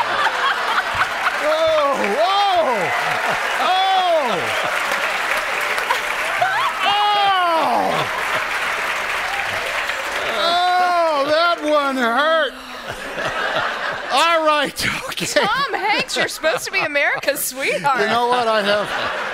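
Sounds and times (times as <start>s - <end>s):
large audience applauding: 0.0s - 16.8s
laughter: 0.0s - 19.3s
audience whoops and cheers: 0.9s - 11.3s
speech: 14.2s - 19.3s.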